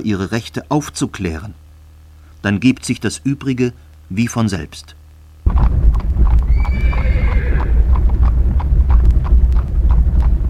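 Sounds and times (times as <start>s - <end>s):
speech: 0.0s - 1.6s, 2.4s - 5.0s
heavy eight-seat horse-drawn carriage travelling slowly along a river: 5.5s - 10.4s
horse hooves clip-clopping: 5.5s - 10.4s
horse whinnying: 6.4s - 7.9s.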